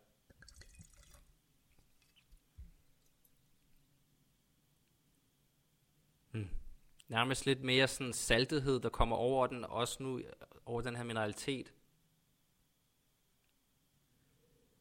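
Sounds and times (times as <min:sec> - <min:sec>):
rosé wine trickling into a glass: 0:00.3 - 0:02.3
speech: 0:06.4 - 0:11.8.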